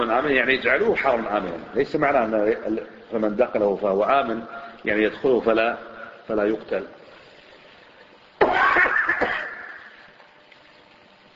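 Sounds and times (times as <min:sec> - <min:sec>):
speech: 0:00.0 - 0:07.0
coughing fit with sharp burst and rough hacks: 0:08.4 - 0:09.9.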